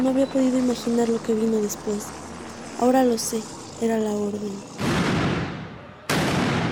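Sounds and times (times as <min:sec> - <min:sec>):
speech: 0:00.0 - 0:04.8
gunshots fired from a building over a town square: 0:04.7 - 0:06.7.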